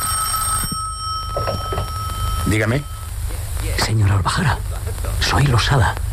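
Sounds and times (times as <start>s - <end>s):
telephone ringing with a steady electronic tone: 0.0s - 3.2s
low hum: 0.0s - 6.1s
speech: 2.5s - 3.0s, 3.7s - 6.0s.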